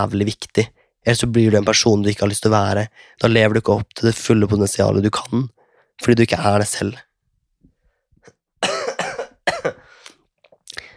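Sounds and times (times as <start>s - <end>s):
speech: 0.0s - 7.1s
person coughing: 8.6s - 10.0s.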